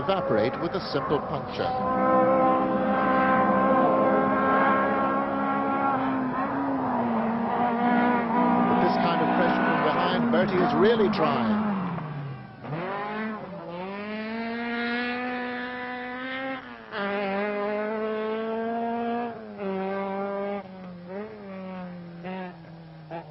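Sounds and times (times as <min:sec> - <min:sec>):
speech: 0:00.0 - 0:02.8, 0:10.4 - 0:11.6
Opel Manta rally car engine screaming at full throttle along a rally stage in Donegal: 0:00.0 - 0:23.2.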